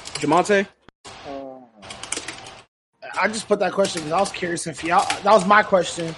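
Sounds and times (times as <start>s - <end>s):
speech: 0.2s - 0.8s, 3.2s - 6.1s
rapid typing on a computer keyboard: 1.9s - 2.6s, 3.6s - 6.1s.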